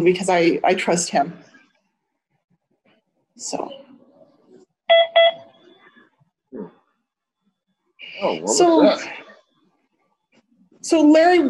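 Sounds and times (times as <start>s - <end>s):
speech: 0.0s - 1.5s, 3.4s - 3.8s, 4.9s - 5.5s, 6.5s - 6.8s, 8.1s - 9.2s, 10.8s - 11.4s
phone notification beeps: 4.9s - 5.6s.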